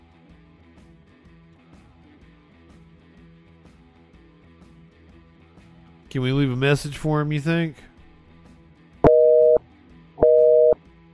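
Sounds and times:
speech: 0:06.1 - 0:07.9
telephone busy signal on a shut-down phone line: 0:09.0 - 0:09.6, 0:10.2 - 0:10.8.

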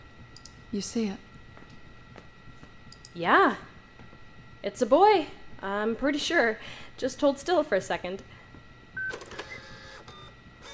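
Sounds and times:
speech: 0:00.7 - 0:01.3, 0:03.2 - 0:03.7, 0:04.6 - 0:08.3
small printer whirring and clicking: 0:09.0 - 0:10.7.

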